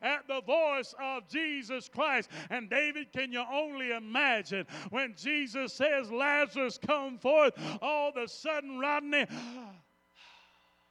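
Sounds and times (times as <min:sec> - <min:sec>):
speech: 0:00.3 - 0:09.8
man imitating the sudden gasp of breath of a dead man reviving: 0:09.3 - 0:10.7.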